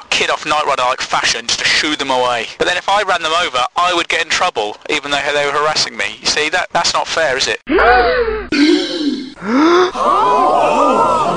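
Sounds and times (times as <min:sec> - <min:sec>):
speech: 0:00.2 - 0:08.8, 0:09.4 - 0:11.1
loud gasps: 0:08.5 - 0:10.0
several voices gasping in shocked drawn-out breaths: 0:08.5 - 0:10.3.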